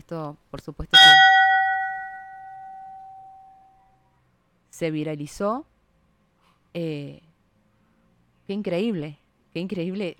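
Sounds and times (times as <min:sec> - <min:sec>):
faint low noise: 0:00.0 - 0:10.1
speech: 0:00.1 - 0:01.5, 0:04.8 - 0:05.7, 0:06.8 - 0:07.3, 0:08.5 - 0:10.1
church bell strike: 0:01.0 - 0:03.5.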